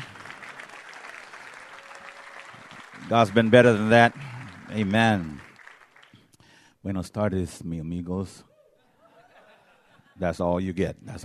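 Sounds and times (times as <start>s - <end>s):
crowd applauding: 0.0s - 6.2s
speech: 3.1s - 5.5s, 6.8s - 8.5s, 10.2s - 11.2s.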